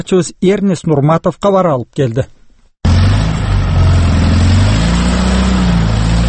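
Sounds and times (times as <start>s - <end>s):
speech: 0.0s - 2.4s
car engine revving hard while stuck in deep snow: 2.8s - 6.2s.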